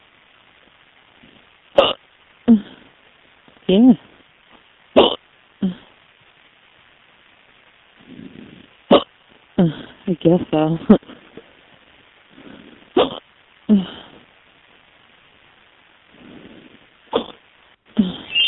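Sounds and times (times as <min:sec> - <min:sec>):
person hiccuping: 0:01.8 - 0:02.8, 0:05.0 - 0:05.9, 0:08.9 - 0:09.8, 0:13.0 - 0:13.2, 0:17.1 - 0:17.4, 0:18.0 - 0:18.4
speech: 0:03.7 - 0:04.1, 0:09.6 - 0:11.0.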